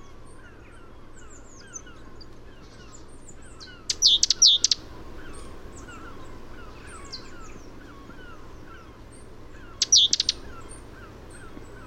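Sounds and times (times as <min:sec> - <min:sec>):
faint softer bird notes: 0:00.0 - 0:11.8
great tit Parus major calling high clipped chirps: 0:03.6 - 0:11.8.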